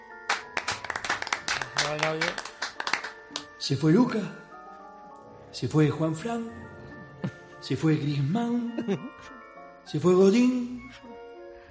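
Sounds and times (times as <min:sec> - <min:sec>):
several people clapping in a locker room: 0:00.2 - 0:03.6
speech: 0:01.9 - 0:02.5, 0:03.6 - 0:04.4, 0:05.6 - 0:06.8, 0:07.6 - 0:11.1.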